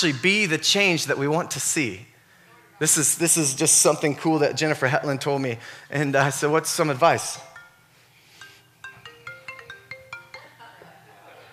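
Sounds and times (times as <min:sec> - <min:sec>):
speech: 0:00.0 - 0:02.1, 0:02.8 - 0:07.5
cell phone ringtone: 0:07.6 - 0:10.8.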